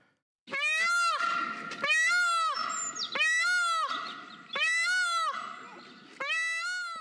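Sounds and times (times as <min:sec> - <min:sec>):
peacock screaming: 0:00.5 - 0:06.9.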